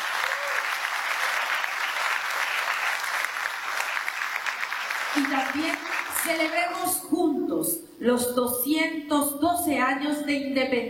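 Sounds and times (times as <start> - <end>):
audience applause: 0.0 - 6.8
speech: 5.2 - 10.8.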